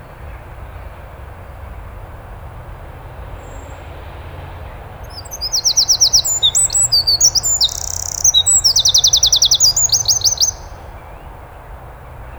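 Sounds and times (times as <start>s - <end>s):
Eurasian wren song: 3.3s - 11.5s.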